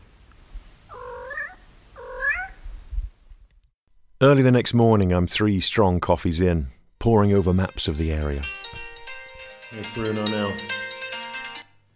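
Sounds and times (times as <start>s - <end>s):
cat meowing in a village in Abruzzo: 0.9s - 2.6s
speech: 4.2s - 8.6s, 9.7s - 10.9s.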